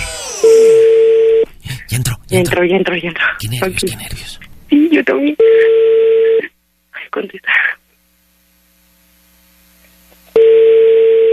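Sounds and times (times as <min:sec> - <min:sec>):
ringback tone of an unanswered phone call: 0:00.8 - 0:01.4, 0:05.4 - 0:06.5, 0:10.4 - 0:11.3
speech: 0:02.0 - 0:06.5, 0:07.1 - 0:07.8.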